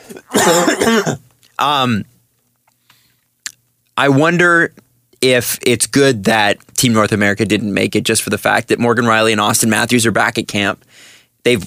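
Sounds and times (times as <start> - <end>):
person clearing throat and coughing with pepper caught in the throat: 0.0 - 1.2
speech: 0.1 - 2.1, 4.0 - 11.6.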